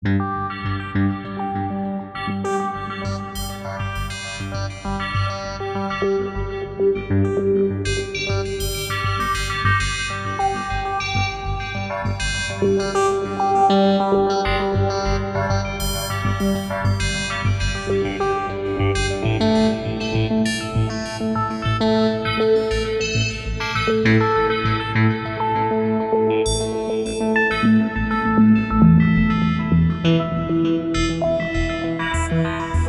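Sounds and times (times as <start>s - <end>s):
filtered synthesizer arpeggio: 0.1s - 32.8s.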